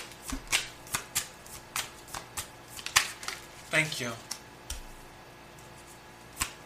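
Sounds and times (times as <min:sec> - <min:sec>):
playing cards being shuffled and dealt: 0:00.0 - 0:03.4, 0:05.7 - 0:06.6
speech: 0:03.7 - 0:04.3.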